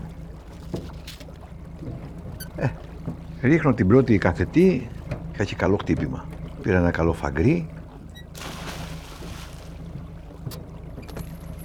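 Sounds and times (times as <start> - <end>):
boat motor running at low speed: 0.0 - 11.6
splashes: 0.0 - 11.6
speech: 2.6 - 7.8.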